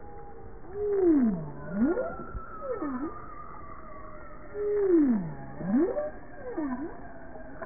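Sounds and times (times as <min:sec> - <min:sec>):
faint higher tonal sounds: 0:00.0 - 0:07.6
bowhead whale moaning calls: 0:00.7 - 0:03.4, 0:04.5 - 0:07.6.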